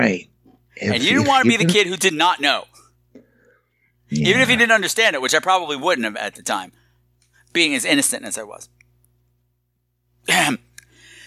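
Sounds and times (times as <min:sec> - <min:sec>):
speech: 0:00.0 - 0:02.8, 0:04.1 - 0:06.8, 0:07.6 - 0:08.8, 0:10.2 - 0:10.7
person clearing throat of something caught in it: 0:04.2 - 0:04.6, 0:10.3 - 0:10.6.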